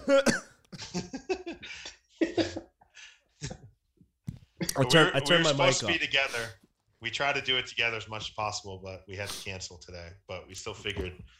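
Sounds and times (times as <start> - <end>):
person coughing: 0.0 - 0.7, 2.2 - 2.8
speech: 0.1 - 1.1, 4.8 - 11.3.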